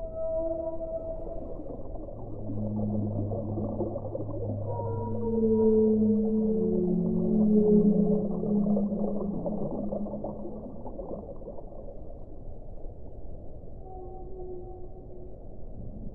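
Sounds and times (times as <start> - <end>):
whales singing underwater: 0.0 - 10.6
underwater rumble and hiss: 0.0 - 16.1.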